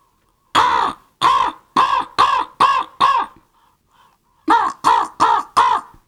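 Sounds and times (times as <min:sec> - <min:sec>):
human voice imitating crow caws: 0:00.6 - 0:03.4, 0:04.5 - 0:06.0.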